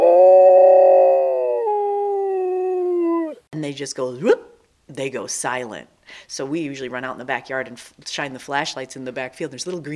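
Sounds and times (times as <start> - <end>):
Alaskan Malamute mix dog deep guttural howl: 0.0 - 3.5
speech: 3.6 - 9.9.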